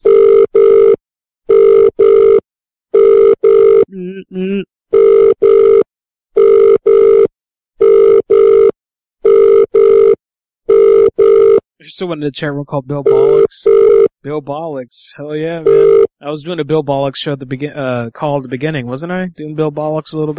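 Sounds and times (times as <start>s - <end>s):
telephone ringing in double bursts: 0.0s - 2.4s, 3.0s - 3.8s, 4.9s - 11.6s, 13.1s - 14.1s, 15.6s - 16.1s
speech: 12.0s - 20.3s.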